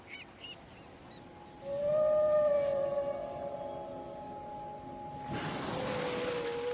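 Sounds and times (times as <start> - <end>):
Bryde's whale moaning call near Weizhou Island China: 1.6 - 6.7.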